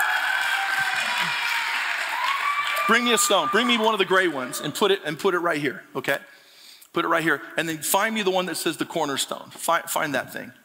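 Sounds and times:
audience applause: 0.0 - 4.7
speech: 2.9 - 10.6.

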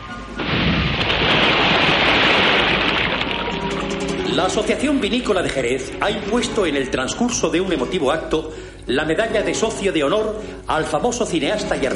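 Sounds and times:
airplane plunging into the sea: 0.4 - 4.0
speech: 4.4 - 11.9.

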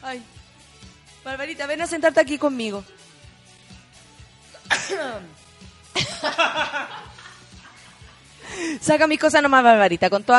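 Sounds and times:
speech: 0.0 - 0.4, 1.2 - 3.0, 4.9 - 5.4, 6.2 - 7.1, 8.5 - 10.3
sneeze: 4.6 - 5.4
laughter: 6.0 - 8.3.

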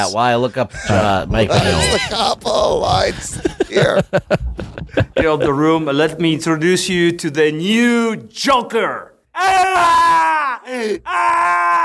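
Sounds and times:
speech: 0.0 - 11.8
laughter: 0.7 - 5.9
man screaming: 9.3 - 11.8.

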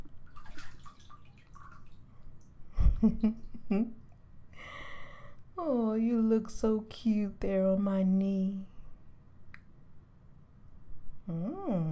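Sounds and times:
water dripping and splashing as a small animal climbs out: 0.0 - 2.6
speech: 3.0 - 4.0, 5.6 - 8.7, 11.3 - 11.8
soft voice murmuring: 11.3 - 11.8.

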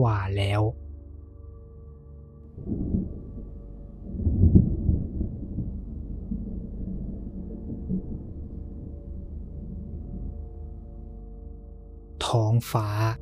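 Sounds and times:
speech: 0.0 - 0.8, 12.3 - 13.2
distant thunder rumbling in the mountains: 2.5 - 11.2.

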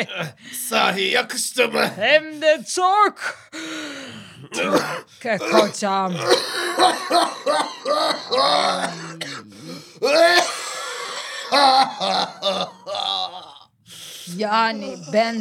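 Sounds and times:
speech: 0.0 - 3.8, 4.5 - 9.2, 11.5 - 13.0, 14.3 - 15.3
man coughing: 4.4 - 13.6.

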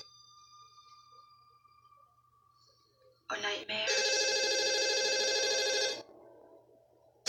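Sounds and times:
telephone ringing in a long buzzing trill: 3.9 - 6.0.

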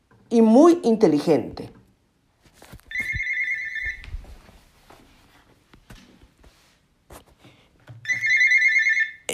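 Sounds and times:
speech: 0.3 - 1.8
soft footsteps: 2.4 - 7.7
telephone ringing with a bright warbling electronic tone: 2.9 - 4.1, 8.0 - 9.3.

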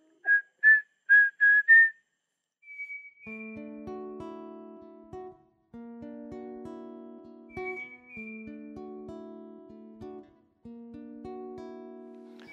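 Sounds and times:
person whistling imitating the Saci folklore creature: 0.2 - 2.0, 2.7 - 3.6, 7.5 - 8.4.

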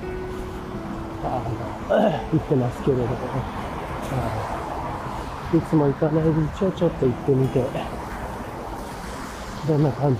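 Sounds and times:
speech: 1.2 - 4.6, 5.5 - 8.0, 9.6 - 10.1
car tires splashing on wet road: 3.4 - 10.1.

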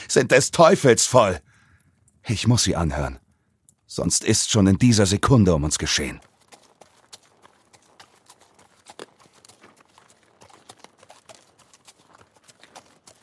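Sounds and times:
speech: 0.1 - 1.5, 2.2 - 3.2, 3.9 - 6.3
horse hooves clip-clopping on a winding road: 5.6 - 13.2.

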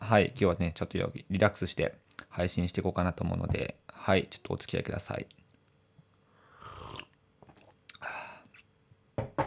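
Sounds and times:
speech: 0.1 - 5.4
slurping sips of instant coffee: 6.5 - 7.8.

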